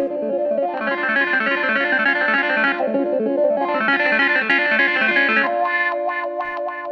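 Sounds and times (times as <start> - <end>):
funky clavinet keyboard riff with distorted effects: 0.0 - 6.9.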